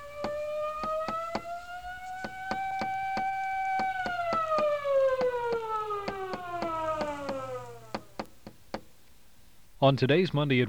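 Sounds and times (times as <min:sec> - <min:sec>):
police siren wailing: 0:00.0 - 0:08.2
sharp regular knocking clicks: 0:00.0 - 0:08.9
speech: 0:09.8 - 0:10.6.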